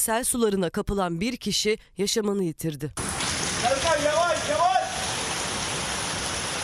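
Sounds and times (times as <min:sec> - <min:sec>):
speech: 0:00.0 - 0:03.2
heavy rain downpour in Mersin Turkey: 0:03.0 - 0:06.6.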